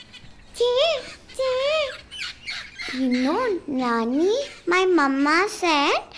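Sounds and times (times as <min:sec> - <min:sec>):
parrots squawking: 0:00.0 - 0:05.1
speech: 0:02.9 - 0:06.1.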